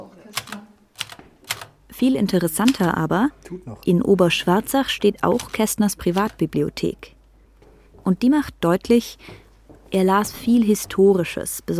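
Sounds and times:
mechanical typewriter keys clacking: 0:00.4 - 0:03.1, 0:05.1 - 0:06.6
speech: 0:02.0 - 0:07.2, 0:08.0 - 0:11.7.

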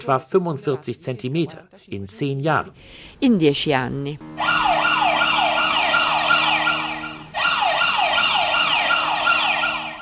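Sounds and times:
speech: 0:00.0 - 0:04.7
earthquake monitoring alarm signal in Naples: 0:04.4 - 0:10.0.

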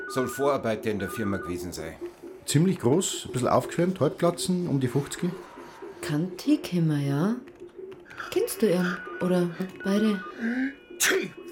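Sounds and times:
speech: 0:00.1 - 0:07.5, 0:08.2 - 0:11.4
person sneezing: 0:11.0 - 0:11.4.

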